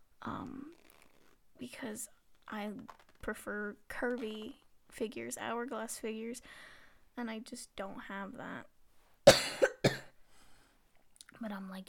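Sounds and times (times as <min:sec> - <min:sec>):
speech: 0:01.6 - 0:08.7, 0:11.4 - 0:11.8
person coughing: 0:09.3 - 0:10.1.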